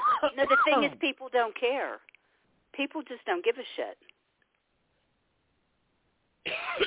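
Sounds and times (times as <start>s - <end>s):
harsh breathy cough with a slight rasp: 0.0s - 1.0s, 6.5s - 6.8s
speech: 0.2s - 2.1s, 2.7s - 4.1s.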